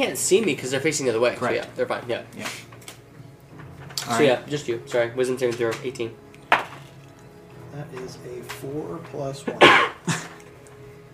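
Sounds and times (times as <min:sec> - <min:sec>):
speech: 0:00.0 - 0:02.7, 0:04.1 - 0:06.2, 0:07.7 - 0:10.2
loud sneeze: 0:09.6 - 0:10.1.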